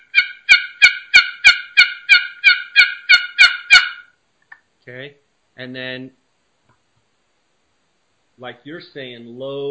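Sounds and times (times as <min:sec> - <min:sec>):
box call sounding a turkey hen assembly yelp: 0:00.0 - 0:04.2
speech: 0:04.8 - 0:06.2, 0:08.4 - 0:09.6.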